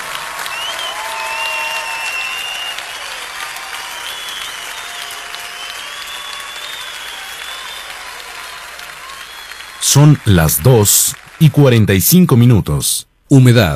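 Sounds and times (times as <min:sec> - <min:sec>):
large crowd applauding: 0:00.0 - 0:12.6
speech: 0:09.9 - 0:13.7.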